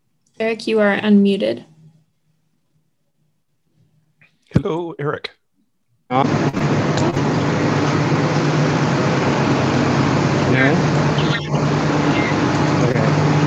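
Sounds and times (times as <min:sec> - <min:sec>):
mechanical hum in a bus station: 0:00.0 - 0:13.4
speech: 0:00.4 - 0:01.7, 0:04.5 - 0:05.4, 0:06.1 - 0:06.8, 0:10.6 - 0:10.9
low engine rumble in a bus station: 0:06.1 - 0:13.4.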